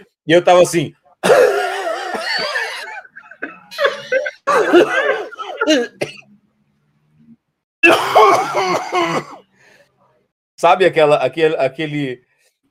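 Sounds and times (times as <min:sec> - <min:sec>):
speech: 0:00.3 - 0:01.5, 0:05.7 - 0:06.1, 0:10.6 - 0:12.3
man imitating an old man's choking cough: 0:01.2 - 0:06.3, 0:07.8 - 0:09.4.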